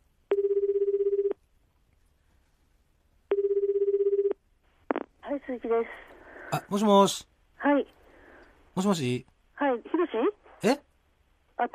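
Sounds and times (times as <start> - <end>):
ringing tone of an outgoing telephone call: 0.3 - 1.4, 3.3 - 5.0
speech: 5.5 - 8.0, 8.8 - 10.9.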